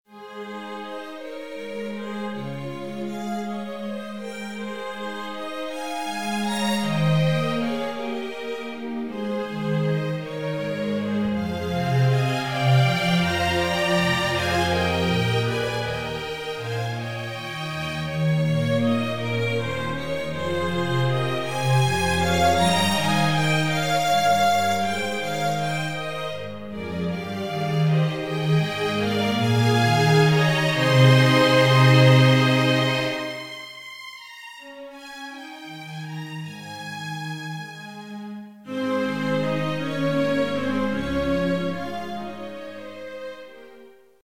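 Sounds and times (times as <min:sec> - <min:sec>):
string orchestra: 0:00.1 - 0:44.2.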